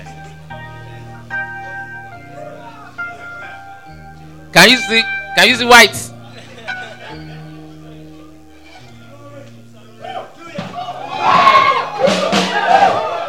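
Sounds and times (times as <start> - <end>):
sustained keyboard chords: 0.0 - 13.2
speech: 4.6 - 6.1
laughter: 6.2 - 8.8, 10.2 - 13.2
individual voices crying out above the crowd: 10.0 - 13.2
large audience shouting and cheering excitedly: 10.0 - 13.2.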